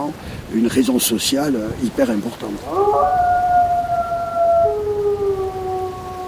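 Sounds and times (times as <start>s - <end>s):
speech: 0.1s - 3.4s
low rumbling background: 1.8s - 6.2s
several wolves howling in a chorus: 2.6s - 6.2s.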